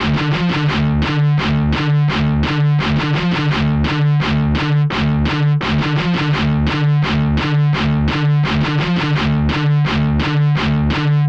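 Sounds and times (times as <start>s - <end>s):
guitar loop in D: 0.0s - 11.2s.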